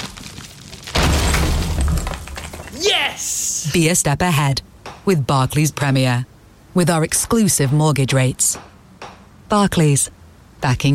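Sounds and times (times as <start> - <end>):
crumbling and rattling wall debris: 0.0 - 2.8
heavy thud of a house wall being knocked through: 0.9 - 2.8
speech: 2.8 - 8.7, 9.5 - 10.9.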